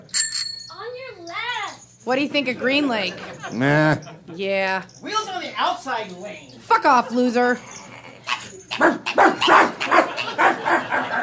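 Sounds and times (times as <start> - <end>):
speech: 2.0 - 7.8
laughter: 2.4 - 4.5, 7.0 - 11.2
dog barking: 8.3 - 11.2.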